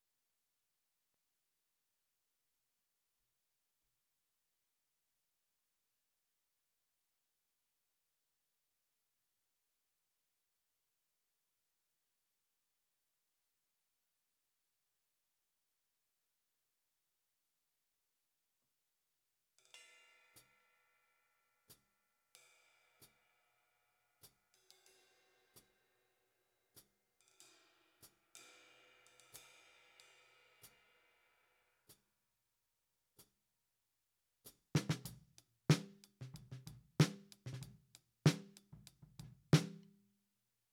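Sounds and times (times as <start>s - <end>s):
snare drum top: 34.8s - 39.9s.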